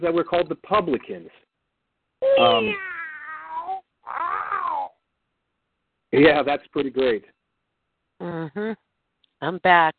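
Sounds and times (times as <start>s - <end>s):
speech: 0.0s - 1.5s, 2.3s - 3.0s, 6.1s - 7.4s, 8.2s - 8.8s, 9.4s - 9.9s
cat meowing: 2.2s - 4.9s.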